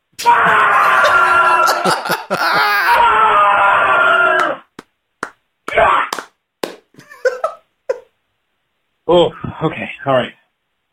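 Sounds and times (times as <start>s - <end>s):
person screaming, raw and strained: 0.2s - 4.6s
laughter: 0.5s - 3.0s, 7.0s - 8.1s
speech: 9.1s - 10.3s.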